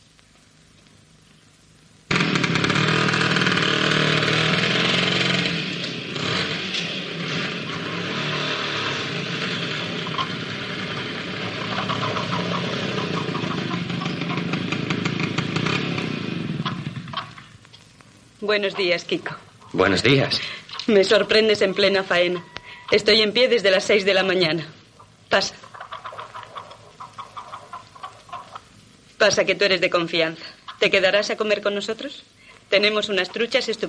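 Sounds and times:
motorcycle engine roaring and idling: 0:02.1 - 0:17.5
speech: 0:18.5 - 0:25.6, 0:29.2 - 0:33.8.

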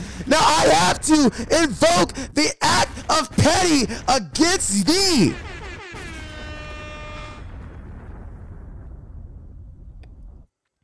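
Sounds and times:
speech: 0:00.2 - 0:05.5
explosion sound effect from a soundboard button: 0:05.3 - 0:10.4.

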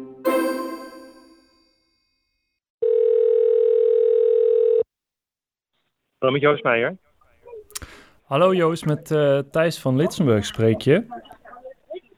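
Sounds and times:
bright chiming notes: 0:00.3 - 0:01.9
telephone ringback tone while a call is being placed: 0:02.8 - 0:04.9
speech: 0:06.3 - 0:07.1, 0:08.3 - 0:11.3.

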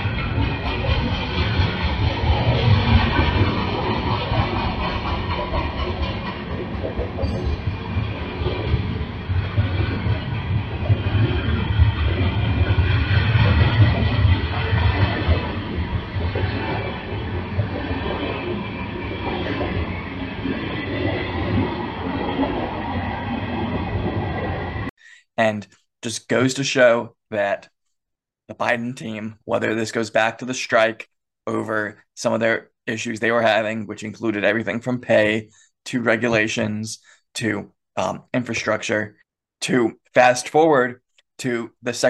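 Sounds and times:
freight train rumbling along the tracks: 0:00.0 - 0:24.9
speech: 0:25.4 - 0:27.8, 0:28.5 - 0:42.0.

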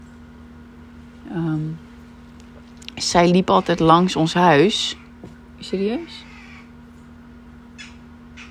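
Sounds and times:
low electrical hum: 0:00.0 - 0:08.4
speech: 0:01.2 - 0:01.9, 0:03.0 - 0:05.0, 0:05.6 - 0:06.3
crow cawing: 0:06.1 - 0:06.8, 0:07.8 - 0:08.4.

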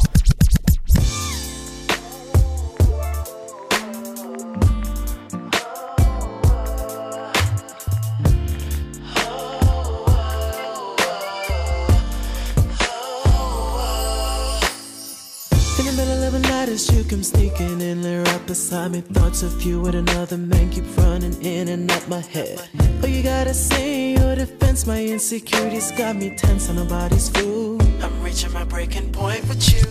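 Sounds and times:
produced album track with bass hits, beat and melodic tones: 0:00.0 - 0:29.8
speech: 0:18.7 - 0:27.7, 0:28.3 - 0:29.8.

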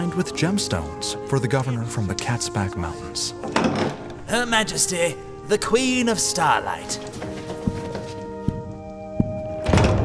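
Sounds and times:
speech: 0:00.2 - 0:07.4
heavy 8-foot-tall door opening with dull thunks: 0:03.3 - 0:04.5, 0:07.0 - 0:10.0.

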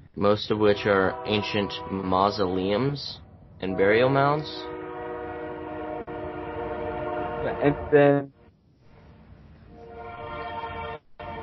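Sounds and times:
train rumbling past: 0:00.0 - 0:11.4
speech: 0:00.2 - 0:04.8, 0:07.4 - 0:08.4
train horn blast: 0:00.7 - 0:02.6, 0:03.7 - 0:08.3, 0:09.7 - 0:11.4.

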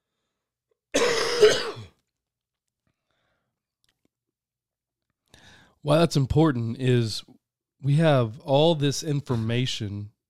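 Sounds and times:
gravelly throat clearing: 0:01.0 - 0:02.0, 0:09.3 - 0:09.6
rough cough: 0:01.0 - 0:02.0, 0:09.3 - 0:09.6
speech: 0:05.8 - 0:10.1.

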